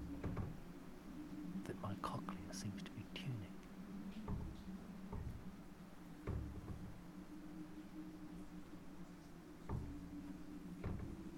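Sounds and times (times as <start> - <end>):
door thumping and clattering: 0.0 - 0.7, 4.2 - 5.5, 6.2 - 7.1, 9.6 - 10.2, 10.8 - 11.3
steady low mechanical hum: 0.0 - 11.3
speech: 1.7 - 3.6.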